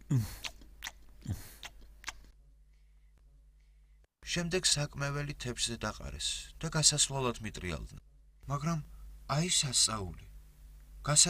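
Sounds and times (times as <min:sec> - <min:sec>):
speech: 0:00.1 - 0:00.4, 0:04.4 - 0:10.3, 0:11.0 - 0:11.2
people breaking a cake and chewing it: 0:00.1 - 0:02.3.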